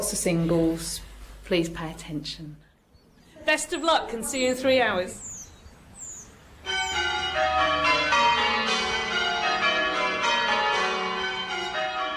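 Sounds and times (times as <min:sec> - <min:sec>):
speech: 0:00.0 - 0:02.7, 0:03.4 - 0:05.3
eight church bells ringing rounds in change ringing: 0:06.6 - 0:12.1.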